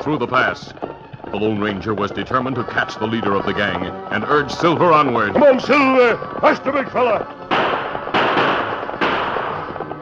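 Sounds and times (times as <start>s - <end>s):
speech: 0.0s - 7.4s
pistol shots fired during a horseback chase: 7.5s - 9.9s.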